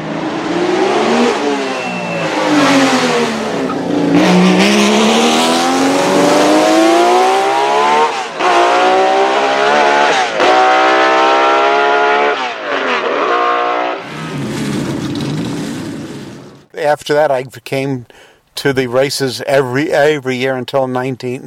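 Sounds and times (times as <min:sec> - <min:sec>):
high-pitched twelve-cylinder race car engine screaming through gear shifts: 0:00.1 - 0:16.0
speech: 0:16.9 - 0:21.4.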